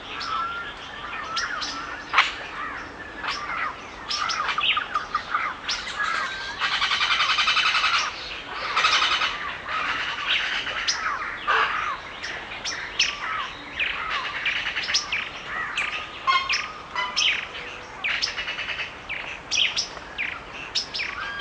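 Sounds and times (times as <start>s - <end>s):
soft steady hiss of rain: 0.0s - 21.3s
birds giving harsh buzzy squawks in a forest: 0.1s - 21.3s.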